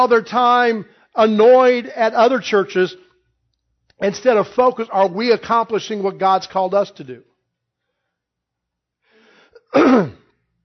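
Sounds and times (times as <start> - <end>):
speech: 0.0 - 3.1, 4.0 - 7.3, 9.7 - 10.2
loud rasping throat clear: 9.6 - 10.3.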